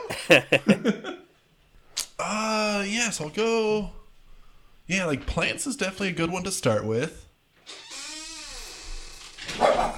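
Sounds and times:
laughter: 0:00.0 - 0:01.3
quiet noise: 0:00.0 - 0:09.9
speech: 0:00.2 - 0:01.2, 0:02.2 - 0:04.0, 0:04.9 - 0:07.8
dog barking: 0:09.5 - 0:09.9.

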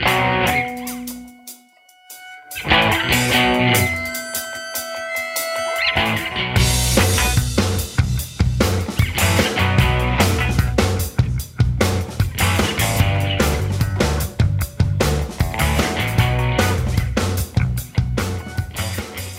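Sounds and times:
sparse guitar notes: 0:00.0 - 0:08.1, 0:12.4 - 0:19.3
distorted guitar in a rock song: 0:00.0 - 0:19.3
pounding drums in a rock song: 0:00.5 - 0:18.5.

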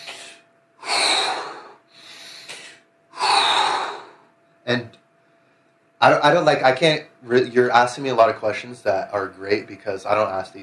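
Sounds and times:
deep breathing during a breathwork movement: 0:00.0 - 0:04.3
speech: 0:06.0 - 0:10.6.

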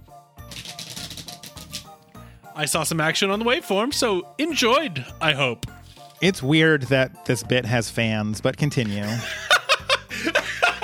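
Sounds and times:
papery shuffling with clicks and riffles: 0:00.5 - 0:02.1, 0:05.8 - 0:06.2
speech: 0:02.6 - 0:09.4
laughter: 0:08.9 - 0:10.8.

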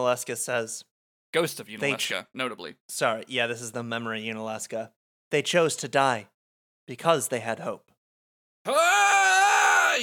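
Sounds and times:
speech: 0:00.0 - 0:06.3, 0:06.9 - 0:07.9, 0:08.6 - 0:09.1
strained male battle cry scream: 0:08.7 - 0:10.0.

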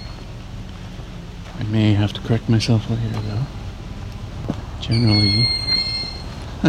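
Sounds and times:
speech: 0:01.6 - 0:03.6, 0:04.8 - 0:05.6
juvenile Cooper's hawk begging scream: 0:04.9 - 0:06.3.

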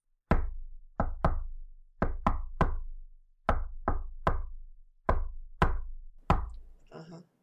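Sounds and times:
sharp knocks on a hard surface tapping Morse code: 0:00.3 - 0:02.9, 0:03.5 - 0:06.6.

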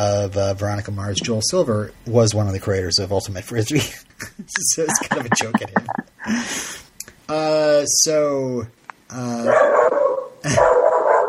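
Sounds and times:
speech: 0:00.0 - 0:06.7, 0:07.3 - 0:09.8, 0:10.4 - 0:10.7
laughter: 0:04.2 - 0:06.3
dog barking: 0:09.4 - 0:11.2.

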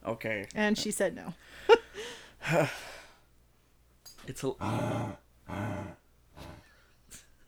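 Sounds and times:
speech: 0:00.1 - 0:02.9, 0:04.3 - 0:06.6
dog growling: 0:04.6 - 0:06.7.

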